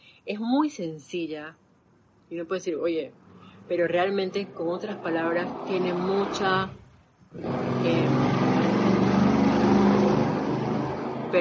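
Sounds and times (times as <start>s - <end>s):
speech: 0.2s - 1.6s, 2.3s - 8.3s
motorcycle or vehicle exhaust passing outside: 3.2s - 11.4s.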